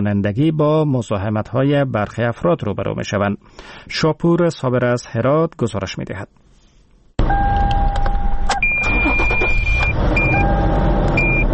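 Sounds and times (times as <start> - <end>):
speech: 0.0 - 6.5
car engine starting in Herat: 7.2 - 11.5
electronic beeps and tones: 7.3 - 11.5.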